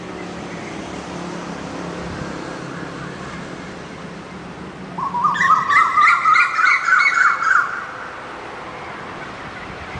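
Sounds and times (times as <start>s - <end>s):
bird calling harsh wavering notes in the morning: 5.0s - 8.1s.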